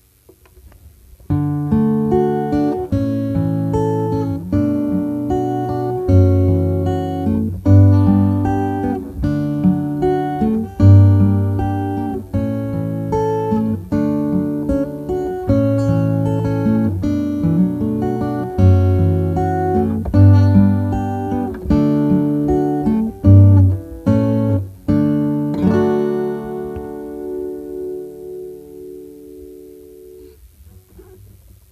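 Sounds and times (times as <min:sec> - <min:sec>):
guitar arpeggio: 0:01.3 - 0:31.4.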